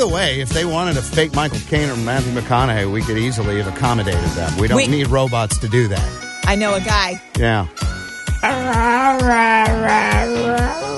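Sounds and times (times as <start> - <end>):
rhythmic thumping beat: 0.0 - 10.9
speech: 0.0 - 10.9
dog howling: 8.4 - 10.9.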